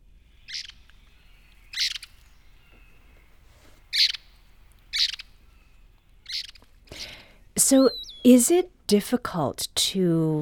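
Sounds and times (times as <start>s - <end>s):
faint hiss: 0.0s - 9.0s
eastern wood pewee call notes: 0.3s - 8.6s
speech: 7.7s - 10.3s.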